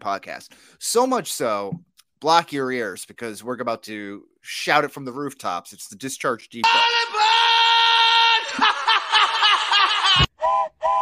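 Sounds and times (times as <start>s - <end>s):
speech: 0.0s - 7.5s
laughter: 8.3s - 10.3s
steam train whistle: 10.4s - 11.0s.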